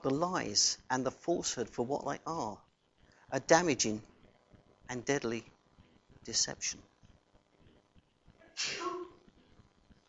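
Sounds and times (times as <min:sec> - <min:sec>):
speech: 0:00.0 - 0:02.7, 0:03.3 - 0:04.1, 0:04.9 - 0:05.5, 0:06.2 - 0:06.9, 0:08.6 - 0:09.0
sneeze: 0:08.6 - 0:09.1.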